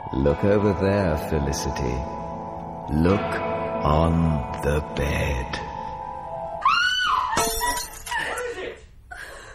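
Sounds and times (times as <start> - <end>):
speech: 0.1 - 2.2, 2.9 - 5.7
woman screaming: 6.6 - 8.6
drinking glass dropped and shattering: 7.3 - 8.4.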